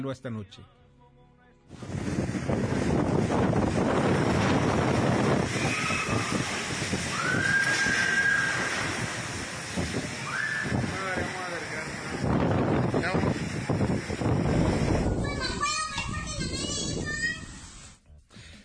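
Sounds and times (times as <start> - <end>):
speech: 0.0 - 0.8
strong wind from a tropical storm roaring: 1.7 - 17.9
indistinct voices and chatter: 14.8 - 18.2.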